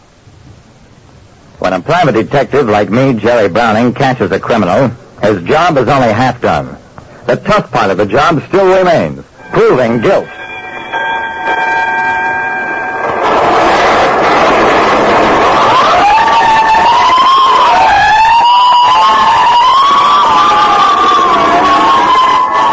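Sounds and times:
speech: 0:01.6 - 0:10.4
blaring horn-like tone: 0:09.4 - 0:14.0
fire engine sirens wailing at night: 0:12.6 - 0:22.7.

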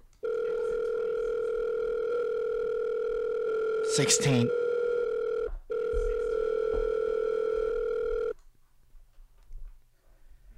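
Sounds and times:
telephone dial tone: 0:00.2 - 0:08.4
speech: 0:04.0 - 0:04.6.

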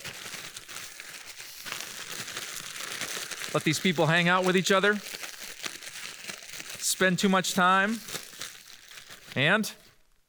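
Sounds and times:
Ziploc plastic bag being zipped shut: 0:00.0 - 0:09.4
speech: 0:03.5 - 0:05.2, 0:07.0 - 0:08.1, 0:09.4 - 0:09.8.

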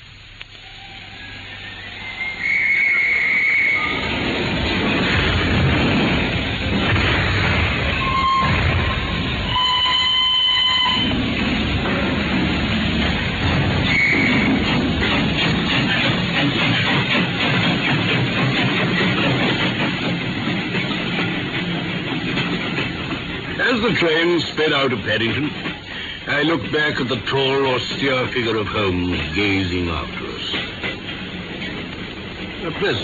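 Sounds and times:
steam train pulling away from a station: 0:00.0 - 0:33.0
steam train whistle: 0:00.6 - 0:04.1, 0:07.9 - 0:11.2, 0:13.9 - 0:14.5
speech: 0:24.6 - 0:25.7, 0:26.3 - 0:30.7, 0:32.7 - 0:33.0.

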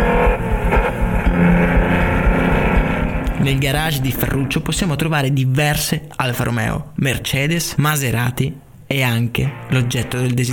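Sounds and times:
sports car engine revving: 0:00.0 - 0:04.7
speech: 0:03.5 - 0:10.5.

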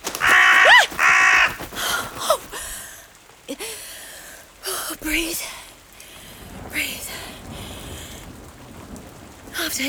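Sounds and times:
crow cawing: 0:00.0 - 0:02.7.

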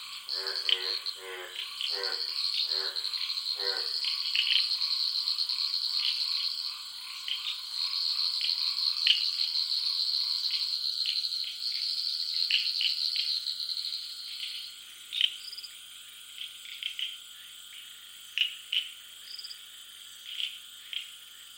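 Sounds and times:
faint insect hiss: 0:00.0 - 0:21.5
frogs calling in a dense pulsing chorus at night: 0:00.0 - 0:21.5
low rapid croaks: 0:00.3 - 0:04.6.

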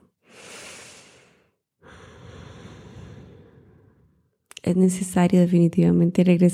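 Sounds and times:
slow deep inhale and exhale in a guided breathing exercise: 0:00.0 - 0:04.4
speech: 0:04.7 - 0:06.5.

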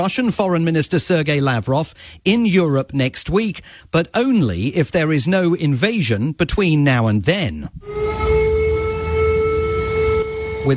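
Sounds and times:
speech: 0:00.0 - 0:08.3
air raid siren wailing: 0:07.8 - 0:10.7.

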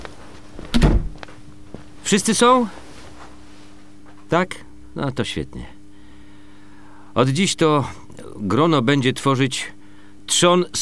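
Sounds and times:
door swung shut with solid thud: 0:00.6 - 0:01.2
speech: 0:02.1 - 0:02.8, 0:04.3 - 0:05.8, 0:07.2 - 0:10.8.

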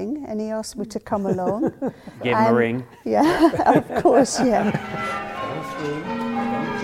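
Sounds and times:
speech: 0:00.3 - 0:06.2
laughter: 0:01.1 - 0:06.1
church bells change ringing in a peal: 0:03.7 - 0:06.8.

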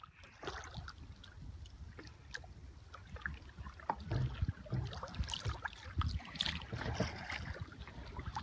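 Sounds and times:
double kayak paddle splashes in a bay in Glacier Country near Juneau: 0:00.0 - 0:08.4
light wind: 0:00.0 - 0:08.4
water trickling: 0:00.0 - 0:08.4.

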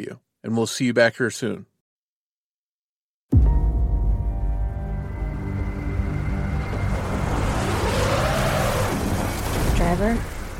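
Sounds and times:
speech: 0:00.0 - 0:01.7, 0:09.9 - 0:10.4
low engine-like drone of a car driving up a mountain: 0:03.8 - 0:10.5
heavy storm wind and rain on a snowy mountain: 0:05.0 - 0:10.5.

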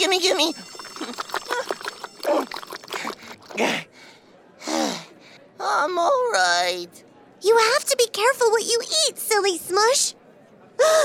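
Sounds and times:
speech: 0:00.0 - 0:02.6, 0:06.7 - 0:10.2, 0:10.8 - 0:11.0
person gulping down ice water after eating hot peppers: 0:00.7 - 0:03.8
person gasping after eating hot peppers: 0:02.3 - 0:05.5.

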